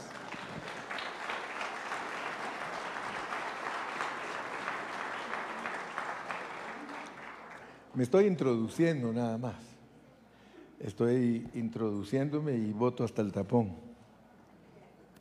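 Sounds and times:
crowd applauding: 0:00.0 - 0:07.9
speech: 0:08.0 - 0:09.7, 0:10.8 - 0:13.8.

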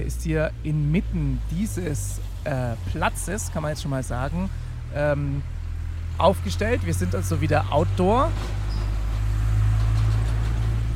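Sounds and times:
speech: 0:00.0 - 0:05.6, 0:06.2 - 0:08.6
busy road traffic at an outdoor junction on a square: 0:00.0 - 0:10.9.

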